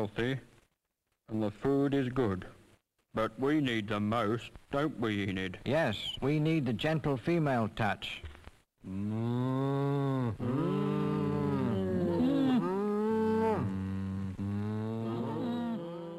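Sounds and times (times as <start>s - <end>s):
speech: 0.0s - 0.5s, 1.3s - 11.1s
cows mooing loudly: 9.0s - 16.1s.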